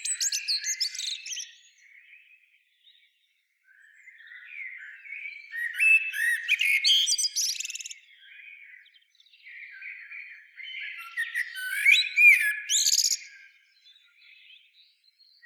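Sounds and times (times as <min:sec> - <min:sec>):
common blackbird song with warbling and squeaky high twittering: 0:00.0 - 0:15.4.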